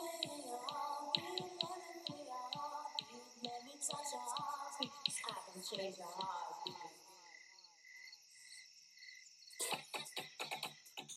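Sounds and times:
soft tonal voice-like melody: 0.0s - 7.0s
crickets chirping in a continuous high trill: 0.0s - 11.1s
speech: 5.8s - 6.4s.

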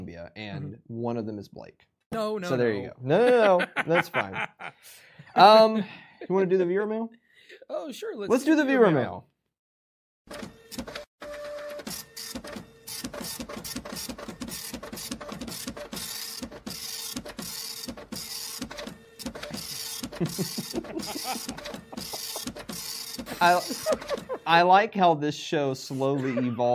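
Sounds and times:
speech: 0.2s - 9.3s, 10.3s - 11.0s, 20.3s - 21.8s, 23.4s - 26.7s
laughter: 3.1s - 5.0s, 20.1s - 22.5s, 23.3s - 24.6s, 25.9s - 26.7s
printer mechanism whirring and clicking as paper feeds: 10.3s - 24.5s.

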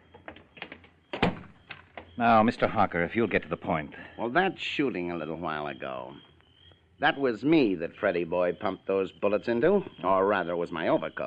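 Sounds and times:
door knocking and rattling as it swings shut: 0.0s - 2.2s
speech: 2.2s - 6.3s, 7.0s - 11.2s.

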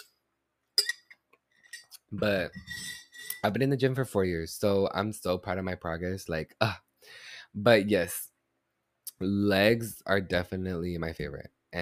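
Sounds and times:
glasses clinking in a toast: 0.8s - 3.6s
speech: 2.1s - 8.3s, 9.2s - 11.8s.

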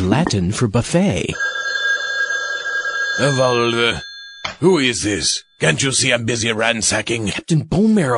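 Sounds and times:
speech: 0.0s - 1.5s, 3.2s - 8.1s
telephone ringing with electronic trill: 1.3s - 6.0s.

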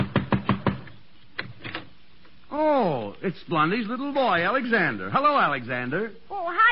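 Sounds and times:
knocking on a door: 0.0s - 0.9s
speech: 2.5s - 6.7s.

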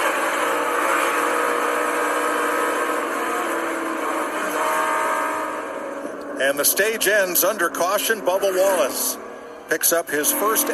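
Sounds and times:
race car engine revving higher in a NASCAR race at Talladega: 0.0s - 10.7s
speech: 6.4s - 10.7s.

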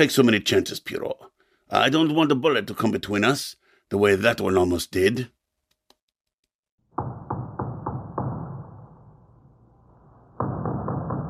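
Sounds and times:
speech: 0.0s - 5.4s
heavy blows pounding on a door to break it: 6.9s - 8.8s, 10.4s - 11.2s.

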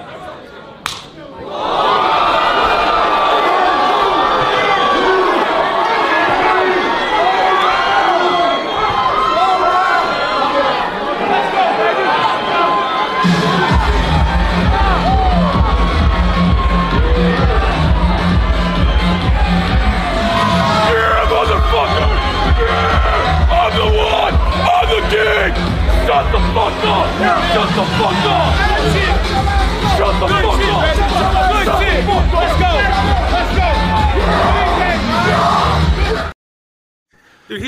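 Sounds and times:
large crowd cheering and shouting at a slap fighting match: 0.9s - 36.3s.

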